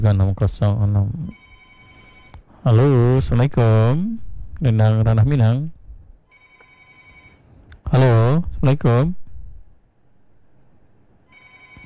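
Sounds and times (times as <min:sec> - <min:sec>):
speech: 0:00.0 - 0:01.4, 0:02.6 - 0:05.8, 0:07.9 - 0:09.2
telephone ringing: 0:01.3 - 0:02.4, 0:06.3 - 0:07.6, 0:11.2 - 0:11.8.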